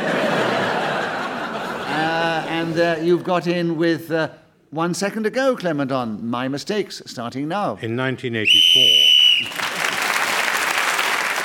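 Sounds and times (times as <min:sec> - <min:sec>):
laughter: 0:00.0 - 0:03.1
speech: 0:02.8 - 0:09.6
referee-style whistle blown to end a timed round: 0:08.4 - 0:09.6
audience applause: 0:09.3 - 0:11.4.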